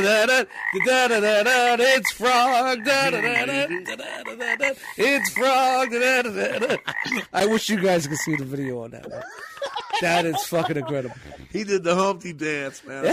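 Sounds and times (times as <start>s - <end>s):
frog croaking: 0.0s - 9.2s
laughter: 0.0s - 11.8s, 12.6s - 13.1s
speech: 0.0s - 13.1s.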